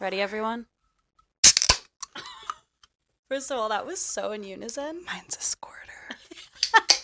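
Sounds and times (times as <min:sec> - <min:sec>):
speech: 0:00.0 - 0:00.8, 0:03.3 - 0:07.0
two drink cans cracking open: 0:01.4 - 0:02.2.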